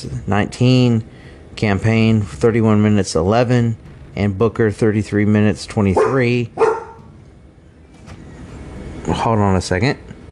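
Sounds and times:
speech: 0:00.0 - 0:06.7, 0:09.2 - 0:10.1
dog barking: 0:06.0 - 0:07.1.

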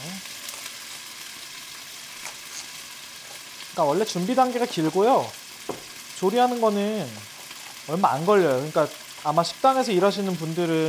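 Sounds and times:
chicken frying and spattering in hot oil: 0:00.0 - 0:10.8
speech: 0:03.8 - 0:07.3, 0:07.9 - 0:10.8.

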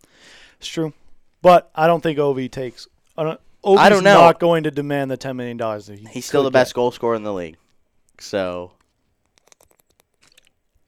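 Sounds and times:
speech: 0:00.6 - 0:07.6, 0:08.2 - 0:08.8
person drinking water against the microphone: 0:09.2 - 0:10.8.

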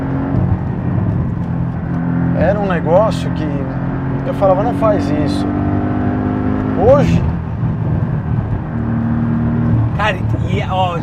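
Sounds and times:
sports car engine roaring: 0:00.0 - 0:11.0
speech: 0:02.8 - 0:05.6, 0:06.8 - 0:07.3, 0:10.1 - 0:11.0.

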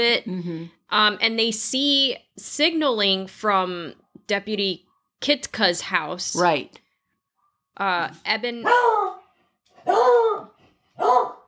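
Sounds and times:
speech: 0:00.0 - 0:06.8, 0:07.8 - 0:09.0
dog barking: 0:08.6 - 0:11.4.

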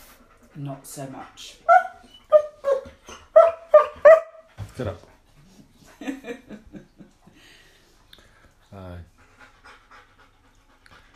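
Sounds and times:
speech: 0:00.6 - 0:01.7, 0:04.8 - 0:05.1
dog indoors yipping and barking: 0:01.7 - 0:04.5.

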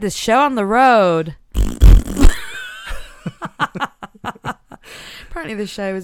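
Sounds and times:
speech: 0:00.0 - 0:01.4, 0:04.9 - 0:06.0
mouth raspberry imitating a fart: 0:01.6 - 0:02.6
short bursts of laughter: 0:02.3 - 0:04.8.

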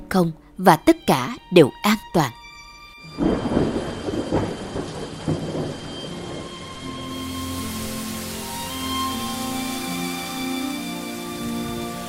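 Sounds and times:
speech: 0:00.1 - 0:02.4
heavy rain pouring down: 0:03.0 - 0:12.0
thunder rumbles: 0:03.1 - 0:12.0.

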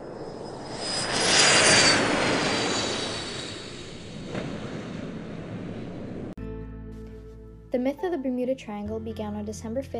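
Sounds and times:
steady high whine of airplane: 0:00.0 - 0:06.3
airplane taking off with broad engine roar: 0:00.0 - 0:06.4
speech: 0:07.8 - 0:09.9.

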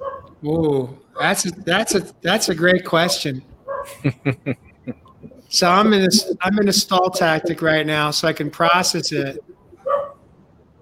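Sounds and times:
dog barking: 0:00.0 - 0:00.3, 0:03.0 - 0:04.0, 0:09.8 - 0:10.2
speech: 0:00.4 - 0:09.5
laughter: 0:03.9 - 0:07.9.

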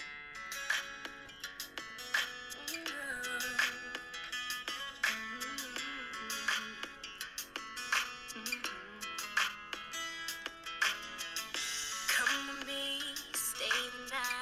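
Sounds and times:
mid-2000s pop R&B song with punchy beat, synths and sung vocal: 0:00.0 - 0:14.3
sung melodic vocal line: 0:02.6 - 0:07.1, 0:08.2 - 0:09.6, 0:12.1 - 0:14.3.

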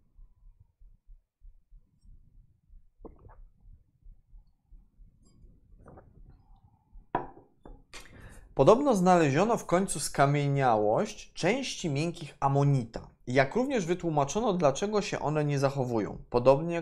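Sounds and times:
person gulping and swallowing water from a glass: 0:00.2 - 0:08.2
glass clinking as it is lifted and set down: 0:07.2 - 0:07.9
speech: 0:08.6 - 0:16.7.

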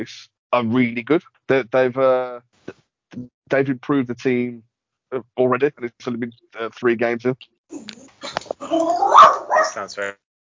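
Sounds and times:
speech: 0:00.0 - 0:10.2
dog barking and growling: 0:08.6 - 0:10.0.

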